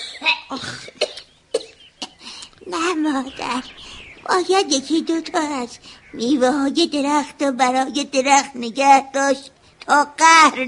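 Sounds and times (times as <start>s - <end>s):
elderly woman with a persistent cough coughing: 0.0s - 2.2s
speech: 0.5s - 1.1s, 2.7s - 10.6s.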